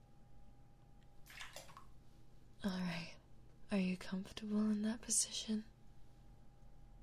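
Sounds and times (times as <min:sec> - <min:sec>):
low steady room hum: 0:00.0 - 0:07.0
water sloshing as a person is laid into a filled bathtub: 0:01.2 - 0:02.0
speech: 0:02.6 - 0:05.7.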